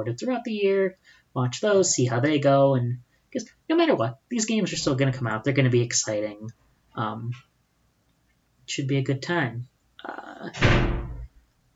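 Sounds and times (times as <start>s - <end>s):
speech: 0.0s - 7.5s, 8.7s - 11.0s
door swinging shut with a heavy dull thud: 10.5s - 11.4s.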